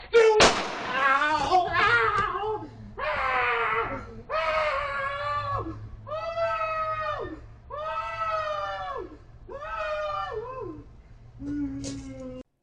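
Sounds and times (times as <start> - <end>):
person screaming oww oww: 0.9 - 12.4.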